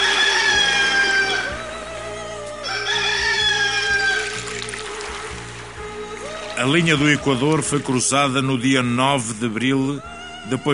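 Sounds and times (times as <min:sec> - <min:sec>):
roosters crowing: 0:00.0 - 0:01.7, 0:02.6 - 0:04.7
speech: 0:06.6 - 0:10.7.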